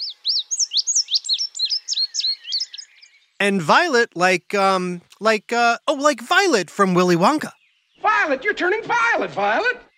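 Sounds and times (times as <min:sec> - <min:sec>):
indigo bunting singing: 0:00.0 - 0:09.9
speech: 0:03.4 - 0:09.9.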